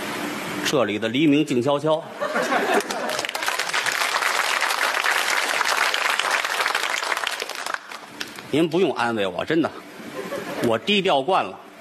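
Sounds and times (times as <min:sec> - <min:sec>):
speech: 0:00.7 - 0:02.9, 0:08.5 - 0:09.8, 0:10.6 - 0:11.6
laughter: 0:02.1 - 0:03.8, 0:10.1 - 0:10.8
audience applause: 0:02.7 - 0:08.4.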